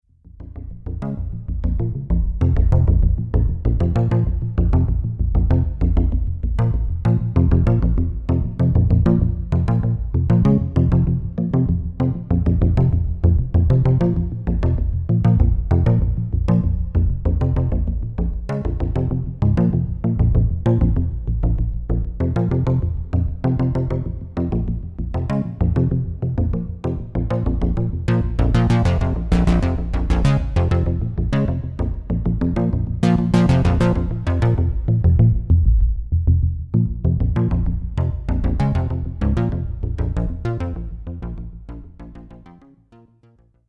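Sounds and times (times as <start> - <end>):
BS3X arpeggiated synth bass: 0.2 - 43.4.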